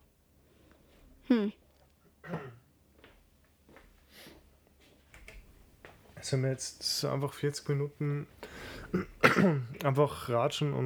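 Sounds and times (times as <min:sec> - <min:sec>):
speech: 0:01.3 - 0:01.6, 0:06.2 - 0:10.8
person clearing throat: 0:02.2 - 0:02.7, 0:08.9 - 0:09.8.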